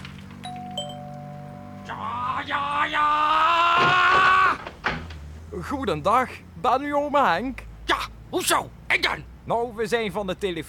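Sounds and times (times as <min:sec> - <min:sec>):
steady low hum: 0:00.1 - 0:02.0
front door doorbell two-tone chime: 0:00.4 - 0:01.9
speech: 0:01.9 - 0:04.0, 0:05.6 - 0:10.6.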